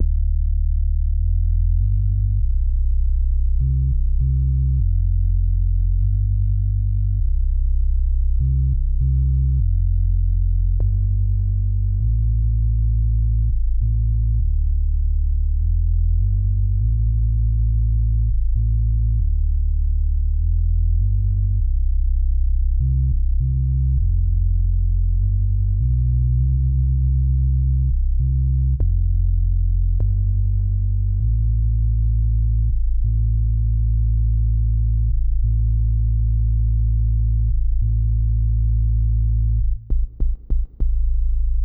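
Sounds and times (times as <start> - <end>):
light staccato cello synth bass: 0.0 - 41.6.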